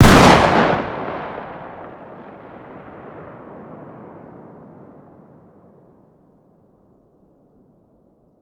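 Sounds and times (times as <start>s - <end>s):
distant 12-gauge shotgun firing outdoors: 0.0s - 4.2s.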